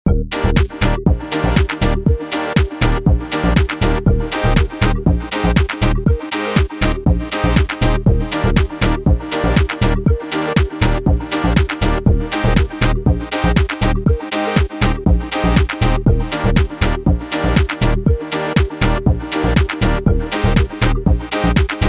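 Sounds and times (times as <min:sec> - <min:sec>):
funny loop: 0:00.1 - 0:21.8.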